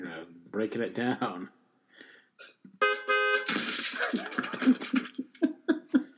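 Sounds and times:
speech: 0.6 - 1.6
loud car horn honking: 2.8 - 3.5
rhythmic bursts of laughter: 3.7 - 6.1.

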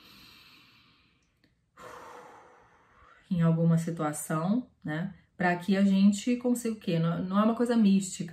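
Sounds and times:
slow deep diaphragmatic breath: 0.0 - 3.3
speech: 3.3 - 8.3.

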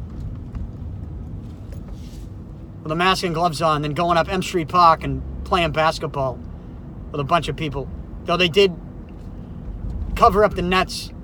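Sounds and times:
car engine and road rumble driving around the city: 0.0 - 11.2
speech: 2.8 - 6.5, 7.1 - 8.8, 10.2 - 11.2.

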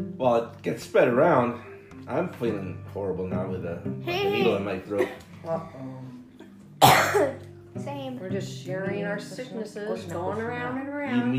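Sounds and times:
speech: 0.2 - 6.2, 6.8 - 11.3
harsh cough: 6.8 - 7.4.

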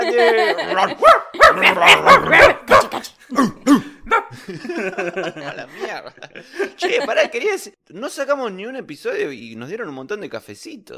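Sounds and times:
laughter: 0.0 - 7.7
speech: 0.2 - 10.9
dog giving sharp high-pitched barks: 1.0 - 3.0, 4.1 - 4.3.

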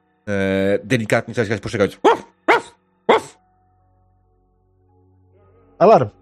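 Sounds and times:
speech: 0.3 - 2.2, 5.8 - 6.2
dog barking in a video game: 2.0 - 3.4.

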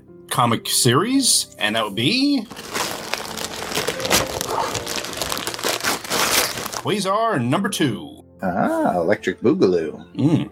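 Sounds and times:
speech: 0.4 - 2.8, 6.8 - 10.4
gift wrap crinkling and tearing: 2.4 - 7.1.

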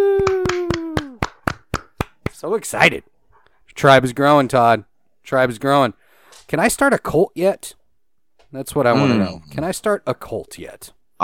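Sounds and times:
sharp hand claps: 0.0 - 2.5
speech: 2.4 - 3.1, 3.7 - 7.8, 8.5 - 11.2.

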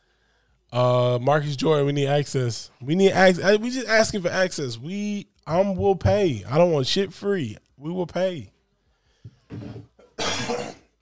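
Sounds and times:
speech: 0.7 - 8.5, 9.5 - 9.9
person coughing: 10.1 - 11.0.

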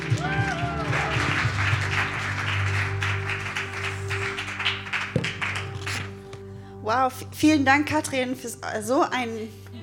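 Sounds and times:
faint cheers and whoops: 0.0 - 1.5
large crowd applauding: 0.0 - 6.1
speech: 6.9 - 9.7.

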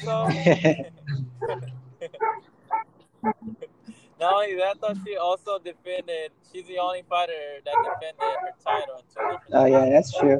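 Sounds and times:
speech: 0.0 - 1.7, 4.2 - 10.3
laughter: 0.0 - 2.3, 3.5 - 9.0
dog yipping, barking and whimpering: 1.4 - 2.8, 7.7 - 10.3.

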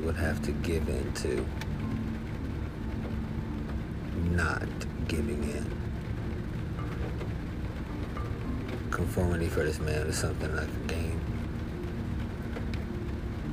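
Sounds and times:
speech: 0.0 - 1.7, 4.2 - 5.9, 8.9 - 11.2
steady rain: 0.0 - 13.5.

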